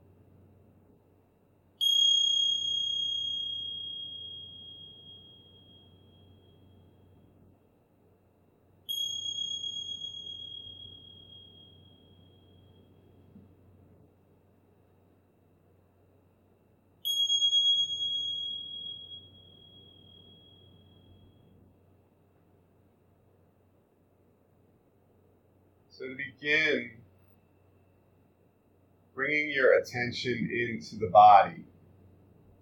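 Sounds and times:
meditation bell ringing: 1.8 - 7.4, 8.9 - 13.4, 17.0 - 21.6, 26.1 - 28.0
speech: 26.0 - 27.0, 29.3 - 31.7.

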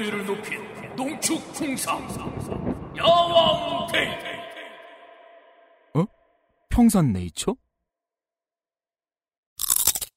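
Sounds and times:
speech: 0.0 - 4.3, 6.0 - 6.2, 6.8 - 7.6
loud bite into a crunchy fruit snack: 9.6 - 10.1.

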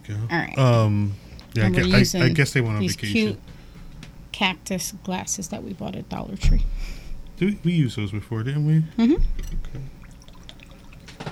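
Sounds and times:
speech: 0.1 - 3.6, 4.4 - 10.0
drink poured from a can into a glass: 10.0 - 11.3.

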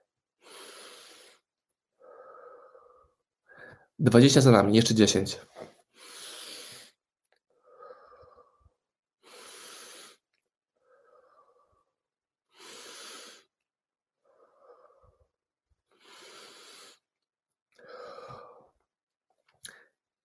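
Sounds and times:
deep inhales through nose and exhales: 0.4 - 4.0, 5.8 - 13.6, 14.2 - 17.1, 17.8 - 18.8
speech: 4.0 - 5.7.

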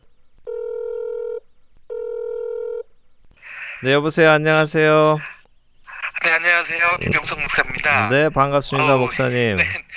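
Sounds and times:
telephone ringback tones while connecting: 0.5 - 2.8
speech: 3.8 - 5.3, 6.3 - 9.9.

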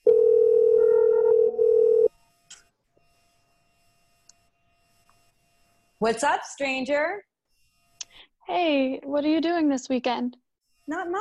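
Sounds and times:
electronic cell phone call ringing tone: 0.0 - 2.1
speech: 6.0 - 7.3, 8.2 - 11.1.

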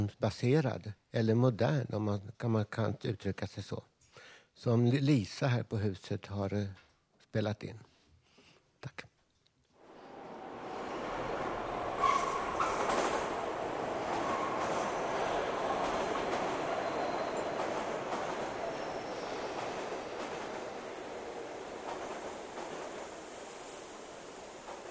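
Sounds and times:
speech: 0.0 - 7.9, 8.8 - 9.1
subway train rattling through a tunnel: 9.8 - 24.8
metallic squeal: 10.7 - 17.7.

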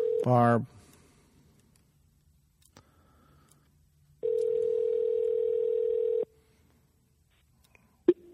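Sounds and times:
phone ringback tone during outgoing call: 0.0 - 0.4, 4.2 - 6.3
speech: 0.2 - 0.8.

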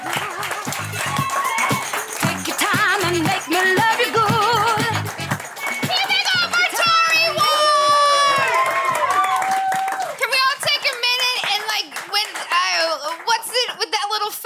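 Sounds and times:
crowd whooping and cheering: 0.0 - 2.5, 5.3 - 10.5
audience applause: 0.0 - 13.7.

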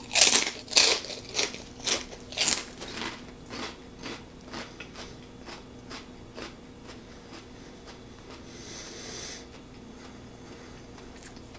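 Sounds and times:
person biting and crunching a barbecue-flavor snack: 0.0 - 6.5.

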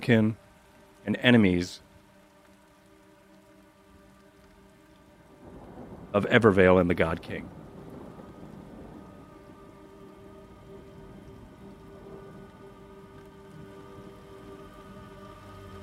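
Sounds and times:
speech: 0.0 - 0.4, 1.0 - 1.9, 6.1 - 7.6
dense rain pattering on surfaces: 0.0 - 15.8
low rumbling of thunder: 5.2 - 15.8.

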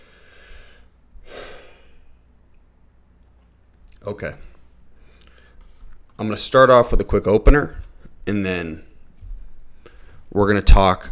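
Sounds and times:
person taking a quick inhale and exhale away from the microphone: 0.0 - 2.2, 5.0 - 5.8, 9.7 - 10.3
speech: 4.0 - 4.5, 6.2 - 8.9, 10.3 - 11.1.

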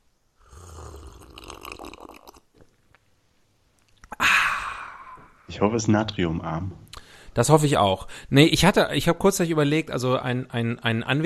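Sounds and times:
person drinking a cool glass of water: 0.4 - 3.1, 3.8 - 5.4
swallowing and gulping: 0.5 - 3.1, 3.8 - 4.4
loud breathy exhale of relief: 4.1 - 5.5, 7.0 - 7.4
speech: 5.5 - 11.2.

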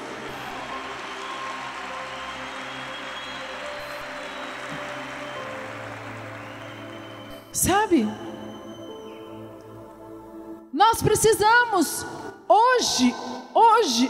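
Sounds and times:
large church audience applauding: 0.0 - 7.6
speech: 7.6 - 8.3, 10.9 - 14.0.

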